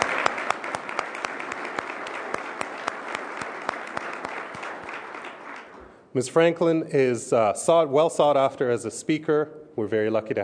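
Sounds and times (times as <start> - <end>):
room full of people applauding: 0.0 - 6.0
speech: 6.2 - 10.4.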